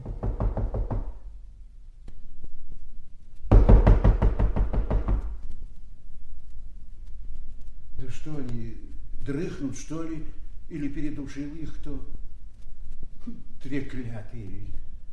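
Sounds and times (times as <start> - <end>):
visitor knocking firmly on a door: 0.0 - 1.2, 3.5 - 5.4
speech: 9.3 - 12.2, 13.2 - 14.8.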